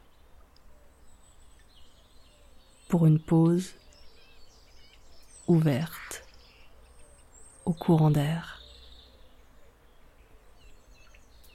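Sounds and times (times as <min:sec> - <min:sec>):
European robin singing faint thin high warbling phrases: 0:00.0 - 0:11.5
speech: 0:02.9 - 0:03.8, 0:05.5 - 0:06.2, 0:07.7 - 0:08.6.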